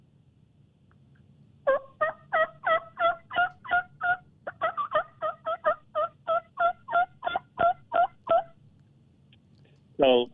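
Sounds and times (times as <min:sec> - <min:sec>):
raspy hen turkey yelps blown on a double mouth reed: 0:01.7 - 0:08.6.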